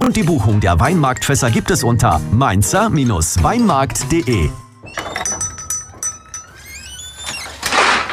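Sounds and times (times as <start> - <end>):
speech: 0.1 - 5.3
metallic clinks and rattles of utensils shifting inside a drawer: 3.8 - 8.1
kitchen drawer sliding open: 7.1 - 8.1.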